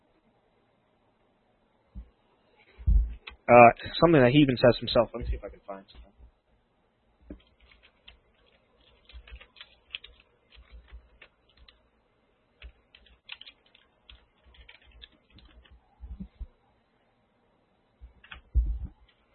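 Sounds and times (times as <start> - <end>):
speech: 3.5 - 6.2
clicky keystrokes on a computer keyboard: 7.3 - 11.8, 12.6 - 16.4, 18.2 - 19.2.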